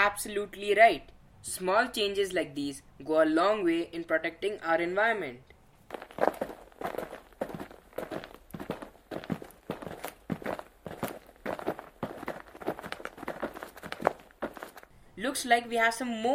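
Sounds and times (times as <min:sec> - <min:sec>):
speech: 0:00.0 - 0:06.2, 0:15.4 - 0:16.3
footsteps of two people walking in: 0:05.8 - 0:14.9.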